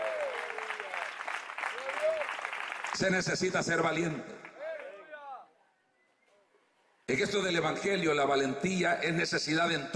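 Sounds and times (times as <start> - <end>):
large crowd applauding: 0.0 - 3.3
speech: 3.0 - 4.5, 7.2 - 9.9.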